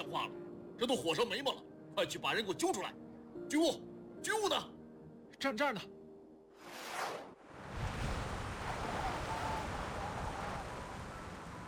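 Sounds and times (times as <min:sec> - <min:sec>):
speech: 0:00.0 - 0:04.8, 0:05.4 - 0:06.0
strong howling wind beating against windows: 0:07.5 - 0:11.6.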